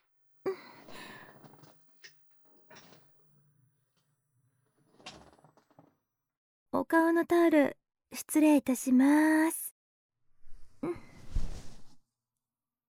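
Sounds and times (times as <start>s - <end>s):
salon chair creaking and rattling as it is raised upright: 4.8s - 5.8s
speech: 6.9s - 9.6s.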